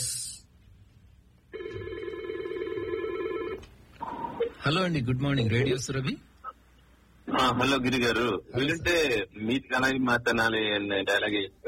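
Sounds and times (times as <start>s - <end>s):
telephone ringing for an incoming caller on a radio call-in line: 1.5s - 3.6s
speech: 4.6s - 6.3s, 7.5s - 11.6s.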